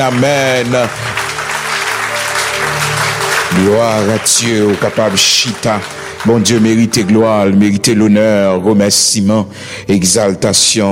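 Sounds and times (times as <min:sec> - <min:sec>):
speech: 0:00.0 - 0:01.1, 0:03.5 - 0:10.8
church audience clapping and applauding: 0:00.0 - 0:08.0.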